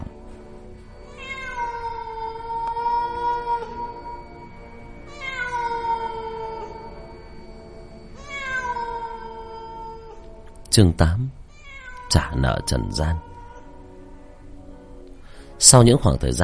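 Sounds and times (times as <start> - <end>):
cat meowing on a roof: 1.0 - 7.0, 8.2 - 10.3, 11.5 - 13.8
speech: 10.7 - 11.4, 12.1 - 13.3, 15.6 - 16.4.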